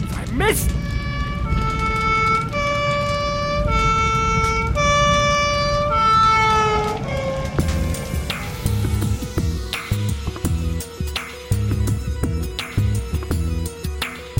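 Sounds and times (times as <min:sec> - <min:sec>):
ambulance siren wailing in a two-tone pattern: 0:00.0 - 0:11.4
low rumble of engine and traffic noise: 0:00.0 - 0:14.3
speech: 0:00.4 - 0:01.0.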